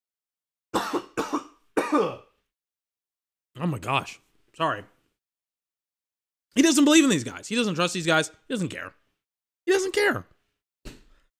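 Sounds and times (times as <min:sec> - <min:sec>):
harsh raspy coughing: 0:00.8 - 0:02.4
speech: 0:03.6 - 0:04.9, 0:06.6 - 0:09.0, 0:09.7 - 0:10.3.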